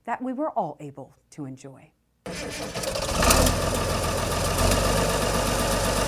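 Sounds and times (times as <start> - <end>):
speech: 0.1 - 2.9
diesel engine of a 1960s model 1256 farm tractor idling: 2.3 - 6.0.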